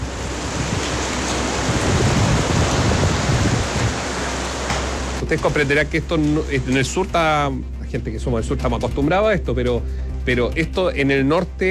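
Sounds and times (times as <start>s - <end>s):
heavy rain in Antofagasta: 0.0s - 7.1s
speech: 5.3s - 11.7s.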